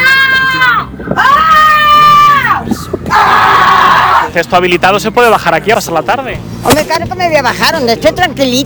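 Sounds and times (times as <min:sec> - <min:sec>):
children shrieking and yelling in a town square: 0:00.0 - 0:04.4
speech: 0:04.4 - 0:08.6.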